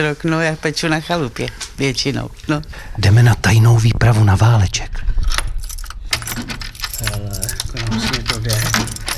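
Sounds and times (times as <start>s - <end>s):
speech: 0.0s - 5.1s
keys jangling and scraping while unlocking a door lock: 5.2s - 9.1s.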